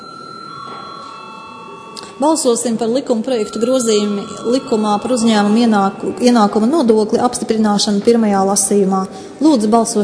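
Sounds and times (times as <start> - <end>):
electric bell ringing in a parliament chamber before a vote: 0.0 - 7.9
speech: 2.2 - 10.0.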